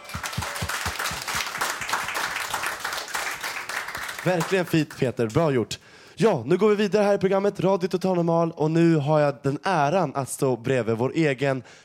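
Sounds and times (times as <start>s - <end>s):
small crowd applauding a song: 0.0s - 5.0s
speech: 4.2s - 11.8s.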